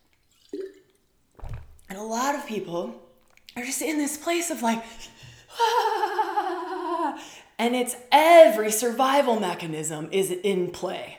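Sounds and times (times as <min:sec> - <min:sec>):
speaker gulping water: 0:00.0 - 0:02.0, 0:03.2 - 0:03.6
speech: 0:02.0 - 0:06.1, 0:07.0 - 0:11.1
laughter: 0:05.6 - 0:07.2.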